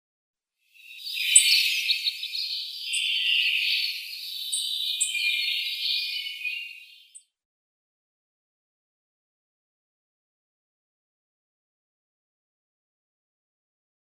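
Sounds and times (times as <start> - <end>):
Yellow-browed Bunting calls: 0.8 - 7.2.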